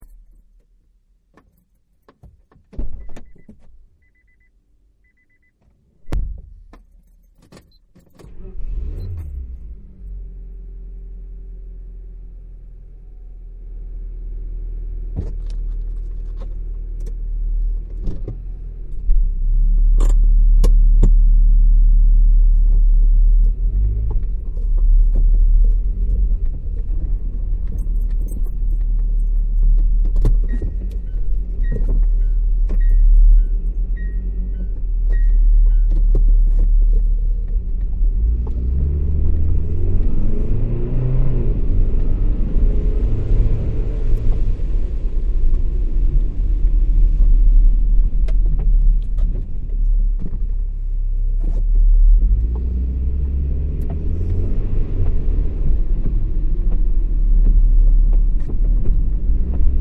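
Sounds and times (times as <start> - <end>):
car ride interior: 0.0 - 59.7
rain: 41.6 - 49.0.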